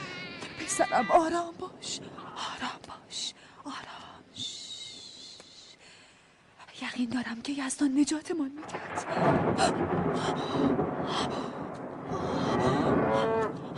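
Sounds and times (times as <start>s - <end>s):
speech: 0.7s - 3.9s, 6.8s - 11.4s, 12.2s - 13.5s
cow mooing: 13.1s - 13.6s.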